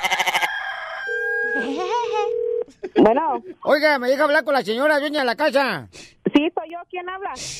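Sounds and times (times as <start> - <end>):
rooster crowing: 0.0 - 1.7
speech: 3.0 - 7.5.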